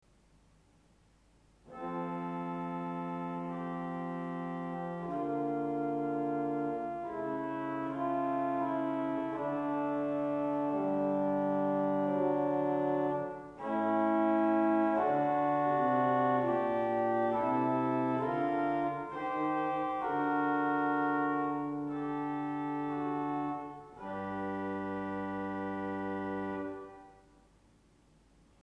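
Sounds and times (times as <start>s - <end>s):
Geigenprinzipal 8 pipe organ stop playing: 1.7s - 27.1s.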